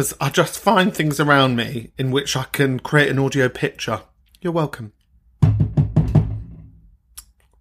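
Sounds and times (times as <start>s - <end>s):
speech: 0.0s - 5.0s
knocking on a big heavy wooden door: 5.4s - 6.7s.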